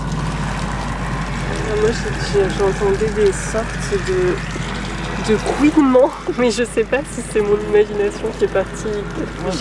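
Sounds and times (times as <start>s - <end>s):
rushing water: 0.0s - 9.5s
speech: 1.7s - 4.6s, 5.2s - 9.5s.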